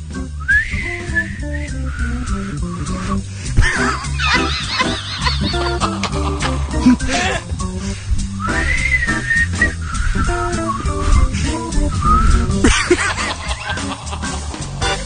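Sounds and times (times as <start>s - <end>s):
person whistling a wavering tune: 0.4s - 3.2s, 8.4s - 12.6s
person laughing while whistling: 3.6s - 7.6s, 12.6s - 15.0s.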